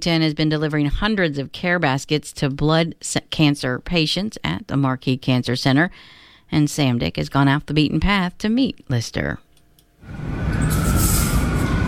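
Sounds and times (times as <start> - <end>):
speech: 0.0 - 9.4, 10.0 - 10.7
emergency vehicle siren wailing on a city street: 10.0 - 11.8
loud street traffic rumbling: 10.0 - 11.8.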